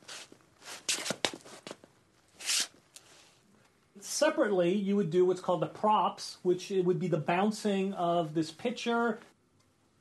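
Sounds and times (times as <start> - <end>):
foley footsteps with gritty scuffing crunches recorded in a studio: 0.0 - 2.9
speech: 4.2 - 9.3.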